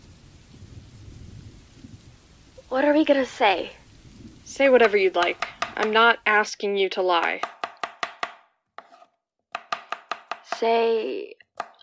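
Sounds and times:
low thunder rumbling from an approaching storm: 0.0s - 6.5s
rain hissing from an approaching storm: 0.0s - 7.5s
speech: 2.7s - 3.8s, 4.6s - 7.5s, 10.6s - 11.4s.

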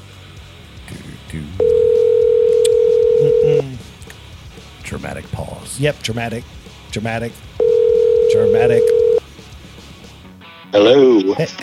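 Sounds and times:
speech: 1.3s - 1.7s, 5.8s - 7.5s, 8.3s - 9.0s, 10.8s - 11.6s
telephone ringback tone: 1.6s - 3.7s, 7.6s - 9.2s.

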